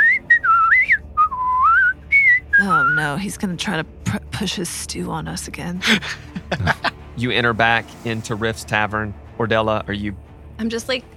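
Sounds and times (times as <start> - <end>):
person whistling a lilting tune: 0.0 - 3.0
speech: 2.6 - 11.1
laughter: 5.8 - 7.0.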